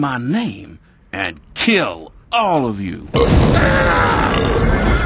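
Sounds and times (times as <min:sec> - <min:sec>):
speech: 0:00.0 - 0:04.9
long loud rumbling burp after eating a steak: 0:03.2 - 0:04.9.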